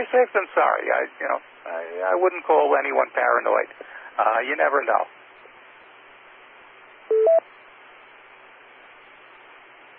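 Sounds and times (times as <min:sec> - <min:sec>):
speech: 0:00.0 - 0:05.2
faint steady hiss: 0:00.0 - 0:09.9
telephone keypad dialing tones calling a work phone: 0:07.1 - 0:07.4.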